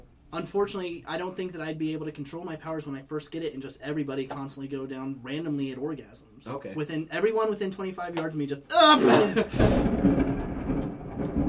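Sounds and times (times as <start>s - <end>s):
speech: 0.3s - 10.4s
laughter: 8.7s - 9.8s
thunder crack and rumble from a thunderstorm outside: 9.5s - 11.4s.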